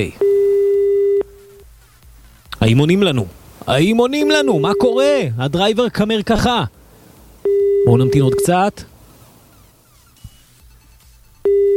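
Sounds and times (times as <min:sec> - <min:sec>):
speech: 0:00.0 - 0:00.2, 0:02.6 - 0:06.8, 0:07.8 - 0:08.9
telephone busy tone: 0:00.2 - 0:01.6, 0:04.2 - 0:05.2, 0:07.4 - 0:08.6, 0:11.5 - 0:11.7.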